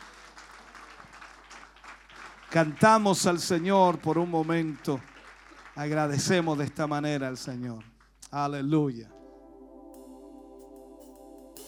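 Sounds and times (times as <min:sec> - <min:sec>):
crowd applauding after a prayer: 0:00.0 - 0:08.0
speech: 0:02.5 - 0:05.1, 0:05.8 - 0:09.2.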